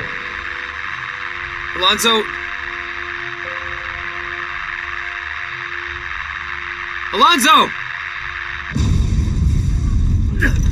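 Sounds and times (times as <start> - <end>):
heavy sustained low rumble: 0.0 - 10.6
speech: 1.8 - 2.4, 7.1 - 7.8, 10.4 - 10.6
massive explosion boom: 8.7 - 10.6.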